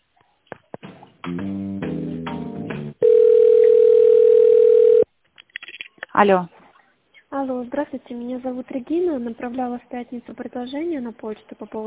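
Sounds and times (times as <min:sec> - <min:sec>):
buzzy telephone tone while a call is being transferred: 0:03.0 - 0:05.1
speech: 0:06.2 - 0:06.5, 0:07.7 - 0:11.8.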